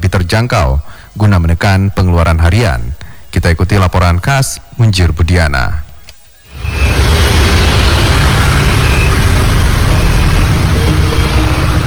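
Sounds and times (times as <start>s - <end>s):
speech: 0.3s - 5.8s
vehicle engines idling in a queue at a petrol station in Banda Aceh: 6.5s - 11.8s.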